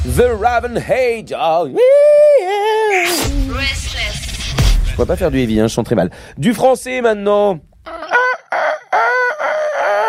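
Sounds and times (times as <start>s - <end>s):
speech: 0.2s - 3.9s, 5.0s - 7.7s
rooster crowing: 7.9s - 10.0s.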